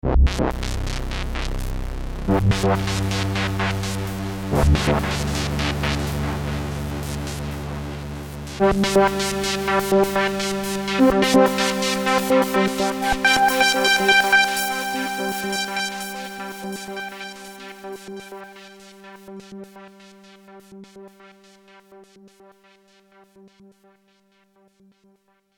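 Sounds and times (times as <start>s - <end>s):
synthesizer FX pad with LFO modulation: 0.1s - 20.4s.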